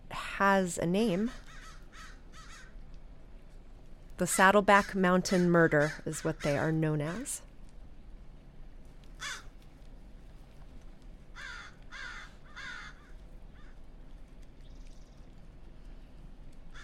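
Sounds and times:
steady low outdoor rumble: 0.0s - 16.8s
speech: 0.4s - 1.5s, 4.2s - 7.5s
crows cawing while being fed: 1.3s - 2.8s, 4.4s - 7.3s, 9.2s - 9.5s, 11.3s - 13.8s.

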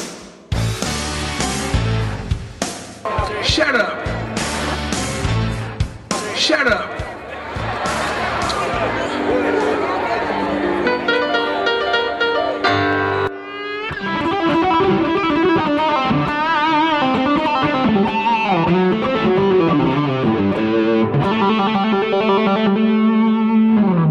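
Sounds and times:
distorted electric guitar playing the blues scale in A: 0.6s - 2.4s, 4.0s - 5.9s, 8.8s - 24.0s
laughter: 3.5s - 11.8s.

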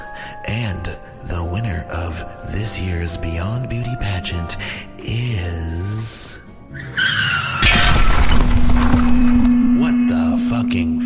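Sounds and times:
speech: 0.5s - 7.0s, 10.5s - 11.0s
taxi cab tires squealing in a skid: 6.7s - 9.4s
taxi cab crashing through a wall with breaking debris and shattering: 7.6s - 9.8s
rumbling wreckage noise: 7.6s - 10.7s.

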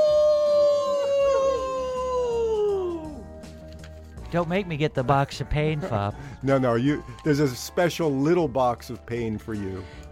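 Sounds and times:
person howling imitating a dog or wolf: 0.0s - 3.2s
speech: 4.3s - 10.1s.

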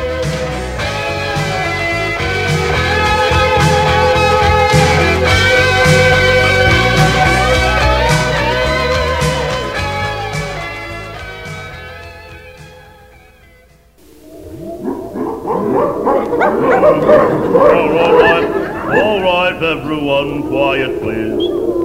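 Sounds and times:
music: 0.0s - 14.0s, 16.6s - 20.9s
laughter: 2.8s - 8.6s, 15.4s - 21.5s
English bulldog barking and yipping: 14.1s - 19.4s.

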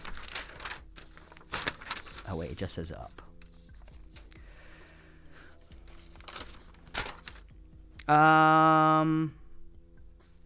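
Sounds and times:
paper crinkling as it is handled: 0.0s - 4.3s, 5.6s - 7.5s
speech: 2.3s - 3.3s, 8.1s - 9.4s.

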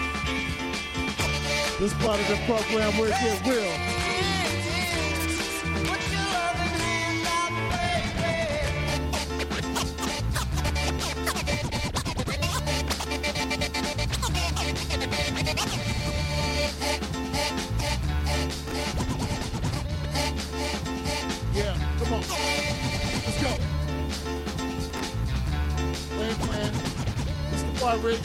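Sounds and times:
dense driving beat: 0.0s - 28.2s
speech: 1.8s - 3.9s
DJ turntable scratching: 8.0s - 21.2s, 22.0s - 23.7s, 26.2s - 27.8s.

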